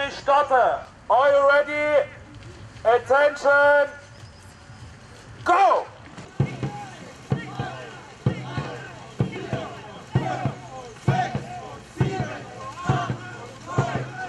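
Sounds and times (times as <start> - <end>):
speech: 0.1 - 2.2, 2.8 - 4.0, 5.4 - 5.9
racing rowing boat oars striking lake water: 4.2 - 14.2
people shouting: 5.5 - 14.2.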